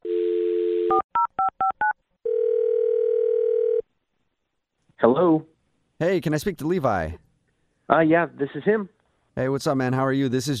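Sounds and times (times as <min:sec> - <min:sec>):
telephone dial tone: 0:00.0 - 0:01.5, 0:02.2 - 0:03.8
telephone ringing tone: 0:00.0 - 0:03.8
speech: 0:05.0 - 0:07.2, 0:07.9 - 0:10.5.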